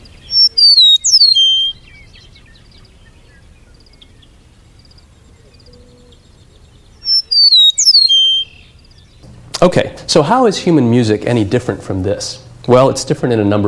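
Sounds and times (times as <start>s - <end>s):
meadowlark singing flute-like slurred descending whistles: 0.0s - 9.3s
speech: 9.6s - 13.6s.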